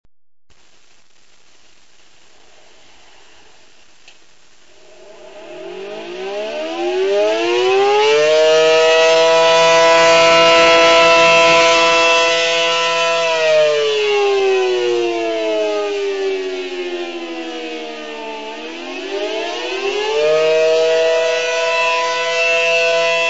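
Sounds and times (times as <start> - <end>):
attack sirens: 4.7 - 23.2.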